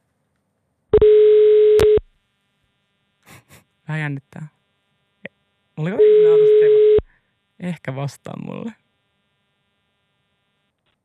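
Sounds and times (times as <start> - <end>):
telephone ringback tone beep: 1.0 - 2.0, 6.0 - 7.0
speech: 3.9 - 4.6, 5.8 - 6.9, 7.6 - 8.8.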